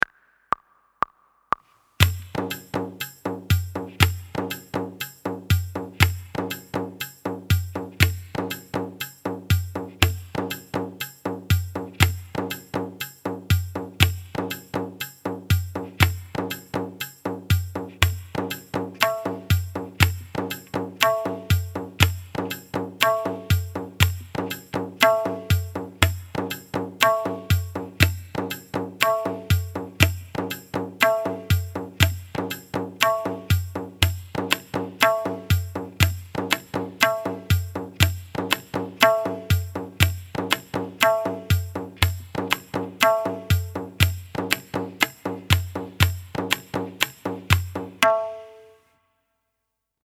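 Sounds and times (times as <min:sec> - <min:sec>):
tabla practice strokes ti and na: 0:00.0 - 0:48.8.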